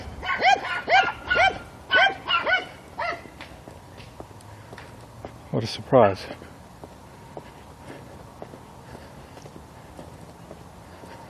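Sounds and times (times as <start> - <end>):
small dog yapping: 0.2 - 3.3
speech: 5.6 - 6.5.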